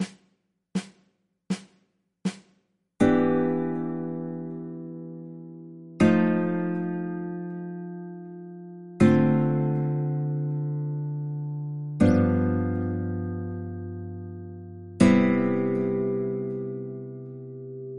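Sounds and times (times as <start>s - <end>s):
guitar playing iii IV7 ii V I chord progressions: 3.0s - 17.9s.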